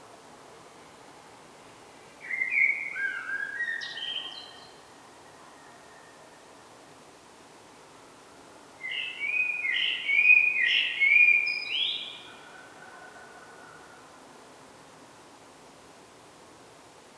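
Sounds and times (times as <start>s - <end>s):
faint steady hiss: 0.0s - 17.1s
common blackbird Turdus merula singing warbled phrases: 2.2s - 4.8s, 8.8s - 12.4s.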